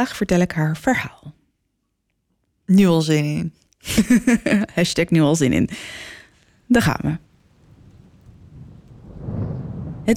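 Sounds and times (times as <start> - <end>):
speech: 0.0 - 1.3, 2.7 - 7.3
laughter: 3.9 - 4.7
steady rain hissing in a thunderstorm: 6.4 - 10.1
deep rumble of rolling thunder: 7.2 - 10.1.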